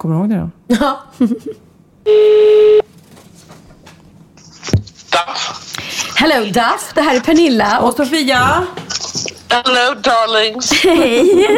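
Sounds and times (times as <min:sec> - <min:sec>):
speech: 0:00.0 - 0:02.6, 0:06.2 - 0:08.8, 0:09.5 - 0:11.5
buzzy electronic tone of a telephone call being dialled and ringing: 0:02.0 - 0:02.9
laughter: 0:10.6 - 0:11.5.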